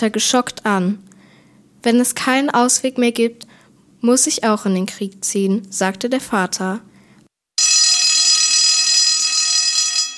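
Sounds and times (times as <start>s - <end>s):
speech: 0.0s - 1.1s, 1.8s - 6.9s
alarm siren blaring at a steady pitch: 7.6s - 10.1s.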